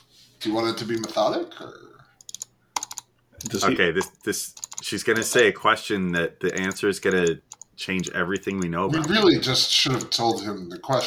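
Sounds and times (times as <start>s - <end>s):
speech: 0.4s - 2.0s, 3.4s - 11.0s
computer keyboard keystrokes: 0.9s - 1.2s, 2.2s - 5.4s, 6.4s - 10.6s.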